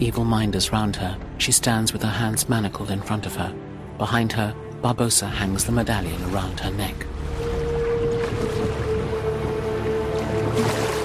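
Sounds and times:
speech: 0.0 - 7.2, 10.6 - 10.8
rowboats moving through water into a sea cave: 5.6 - 11.0.

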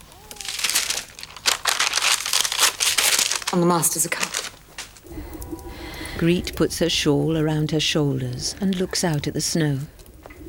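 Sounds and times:
paper documents rustling as someone rummages on a table: 0.0 - 5.1
speech: 3.5 - 10.0.

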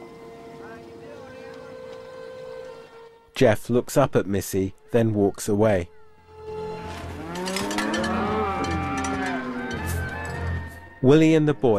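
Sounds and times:
speech: 3.4 - 6.0, 11.0 - 11.7
cattle herd on a ranch lowing: 6.5 - 10.9.

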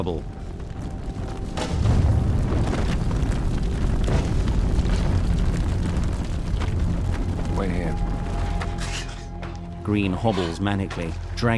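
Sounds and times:
speech: 0.0 - 0.4, 9.9 - 11.5
crackling bursts: 0.0 - 11.5
explosion blowing out the side of a building: 0.4 - 8.5.

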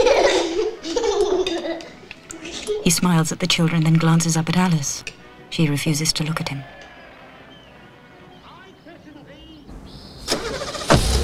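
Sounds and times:
laughter: 0.0 - 2.8
speech: 2.9 - 6.8
BMW car starting and driving away from a house: 9.7 - 11.2.

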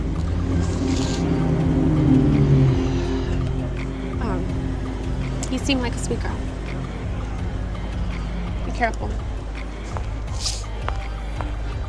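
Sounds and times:
car pulling up: 0.0 - 11.8
speech: 5.7 - 6.4, 8.8 - 9.3.

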